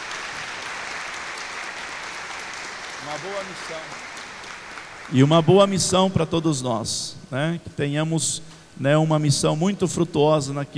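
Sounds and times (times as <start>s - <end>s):
applause from a church congregation: 0.0s - 6.1s
speech: 3.0s - 4.2s, 5.1s - 10.7s.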